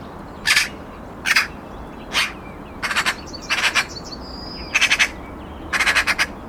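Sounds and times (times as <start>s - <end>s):
Eurasian magpie chattering: 2.1s - 4.0s, 4.7s - 6.3s.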